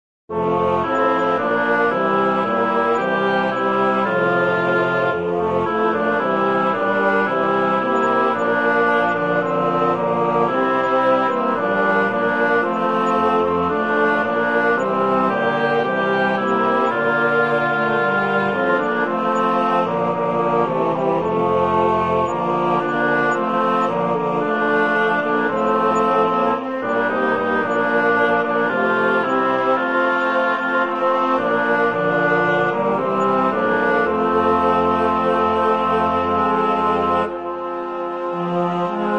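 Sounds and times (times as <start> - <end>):
woodwind music generated in notation software: 0.3 - 39.1.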